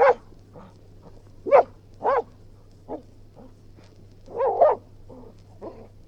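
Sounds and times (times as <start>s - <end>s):
Springer spaniel barking: 0.0s - 0.7s, 1.4s - 2.3s, 4.3s - 4.8s
low steady hum: 0.0s - 6.0s
Springer spaniel growling: 4.4s - 5.9s.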